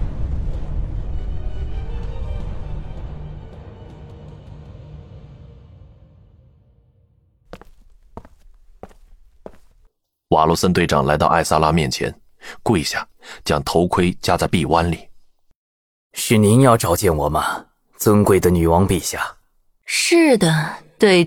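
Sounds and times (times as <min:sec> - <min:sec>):
magic tower shaking violently and exploding: 0:00.0 - 0:05.2
speech: 0:10.4 - 0:15.1, 0:16.2 - 0:21.2.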